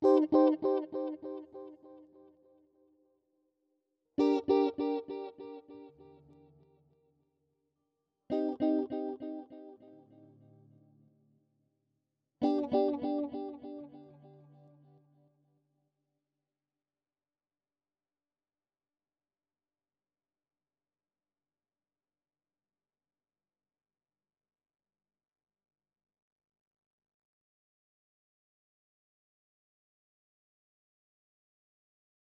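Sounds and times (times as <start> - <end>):
guitar loop in C minor at 116 BPM: 0.0 - 1.4, 4.2 - 5.9, 8.3 - 10.0, 12.4 - 14.4.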